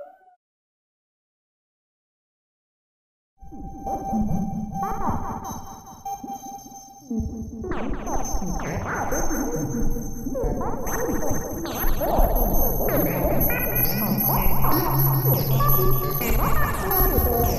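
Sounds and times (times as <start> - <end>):
space alien radio signal: 3.5 - 6.4, 7.1 - 17.5.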